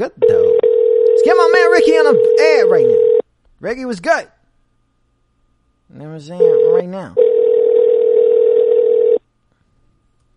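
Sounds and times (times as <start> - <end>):
speech: 0.0 - 0.4, 1.2 - 3.0, 3.6 - 4.4, 5.9 - 7.2
telephone dial tone while placing a call: 7.2 - 9.2.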